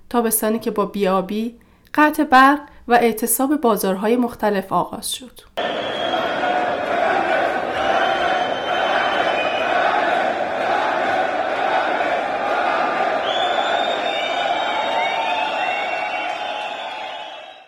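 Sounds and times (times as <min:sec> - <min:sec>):
speech: 0:00.1 - 0:06.0
whistles: 0:05.6 - 0:10.6, 0:12.8 - 0:17.6
crowd of protesting shopkeepers chanting and shouting in a shopping arcade in Tehran: 0:05.6 - 0:17.6.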